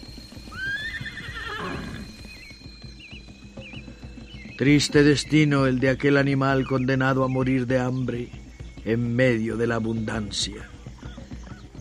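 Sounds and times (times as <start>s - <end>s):
shuffling hooves: 0.0s - 11.7s
horse neighing: 0.3s - 2.6s
speech: 4.6s - 10.8s.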